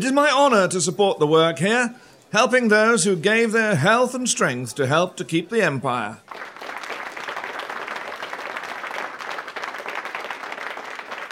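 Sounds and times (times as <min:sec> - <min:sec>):
speech: 0:00.0 - 0:06.5
large crowd applauding: 0:06.2 - 0:11.3.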